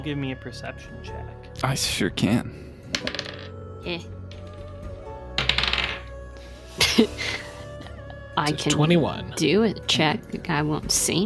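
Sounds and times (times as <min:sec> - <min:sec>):
speech: 0:00.0 - 0:04.2, 0:07.0 - 0:07.5, 0:08.4 - 0:11.2
dice tumbling and clattering across a table: 0:02.9 - 0:03.5, 0:05.4 - 0:06.1
laughter: 0:06.8 - 0:08.9.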